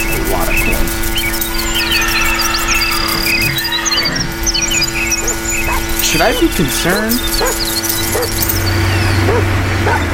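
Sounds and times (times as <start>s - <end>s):
steady droning engine-like hum: 0.0s - 10.1s
dog giving short yipping barks: 5.1s - 6.5s, 7.3s - 10.1s
speech: 6.2s - 7.8s.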